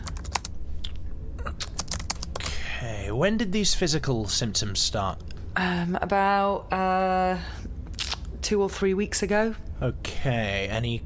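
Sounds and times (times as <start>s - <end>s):
typing on a computer keyboard: 0.0s - 0.5s, 1.6s - 2.5s
steady low hum: 0.0s - 11.0s
speech: 2.8s - 7.6s, 8.4s - 11.0s.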